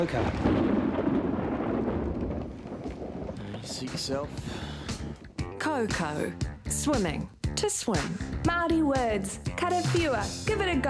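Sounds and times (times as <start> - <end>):
speech: 0.0 - 0.8, 3.6 - 4.8, 5.6 - 10.8
thunder rumbling: 0.0 - 6.8.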